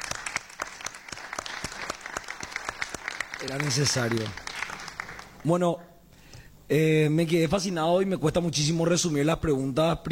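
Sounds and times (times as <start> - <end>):
audience applauding in a conference hall: 0.0 - 5.4
speech: 3.4 - 4.4, 5.4 - 5.9, 6.7 - 10.1.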